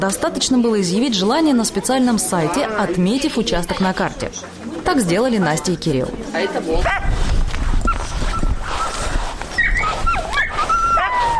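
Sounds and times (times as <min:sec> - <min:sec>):
speech: 0:00.0 - 0:07.3
noisy outdoor background: 0:00.0 - 0:11.3
hounds barking: 0:06.8 - 0:07.2, 0:07.8 - 0:11.3
several hounds whining and whimpering: 0:07.8 - 0:11.3.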